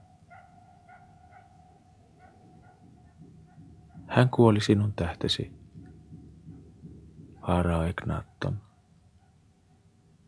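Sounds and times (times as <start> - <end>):
jackal barking in short high yelps: 0.3 - 4.1
low steady rumble: 2.9 - 8.6
speech: 4.1 - 5.6, 7.5 - 8.7.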